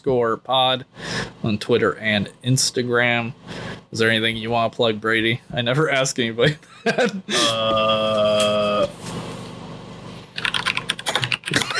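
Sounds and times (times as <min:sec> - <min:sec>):
speech: 0:00.0 - 0:09.0
fast typing on a computer keyboard: 0:10.4 - 0:11.7.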